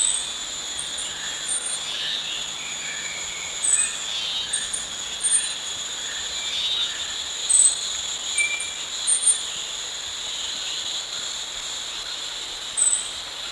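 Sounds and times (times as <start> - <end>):
Bornean stubtail calls: 0.0 - 5.6
steady dense insect chorus: 0.0 - 13.5.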